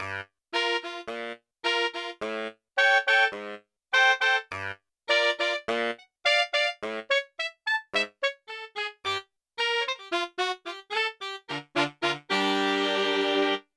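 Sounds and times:
four layered saxophones on a sampler: 0.6 - 13.6.

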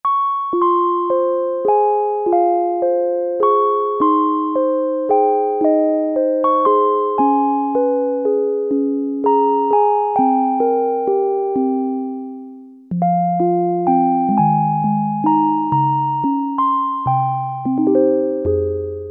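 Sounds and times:
Roland Juno-60 synthesizer factory presets: 0.1 - 19.0
celesta: 0.1 - 19.0.

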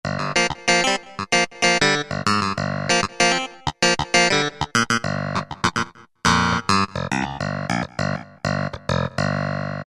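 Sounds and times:
Yamaha TG500 synthesized clavinet: 0.1 - 9.8.

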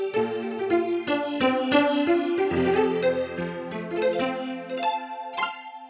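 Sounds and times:
Yamaha CFIII grand piano sampled on a Yamaha TX16W: 0.1 - 5.4.

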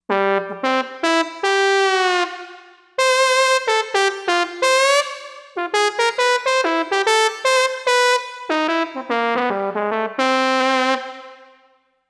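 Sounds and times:
synth brass trombone: 0.1 - 11.6.

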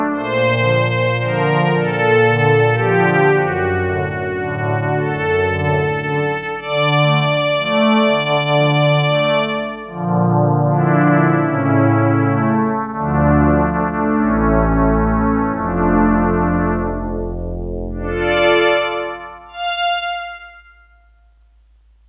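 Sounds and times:
warm strings synthesizer factory patch: 0.1 - 21.0.

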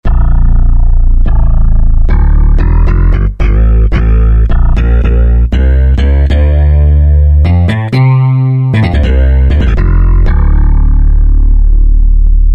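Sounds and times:
Roland JD-990 synthesizer factory bass patch: 0.0 - 12.5.

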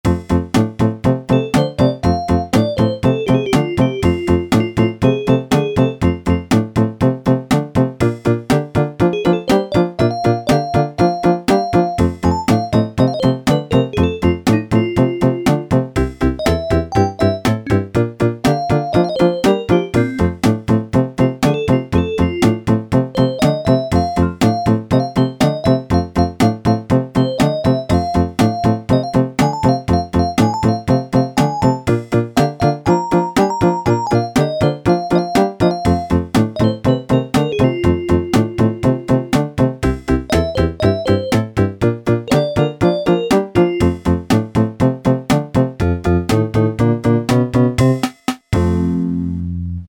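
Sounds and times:
rock and roll demo on Yamaha SHS-10 keytar: 0.0 - 49.6.

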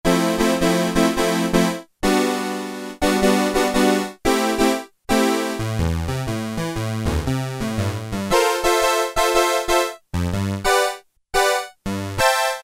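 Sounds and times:
Korg Poly-800 synthesizer: 0.1 - 12.6.

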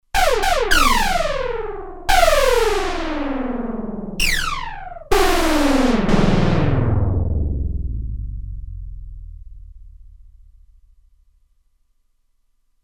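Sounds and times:
Roland Alpha Juno-2 synthesizer arcade sound: 0.2 - 7.9.

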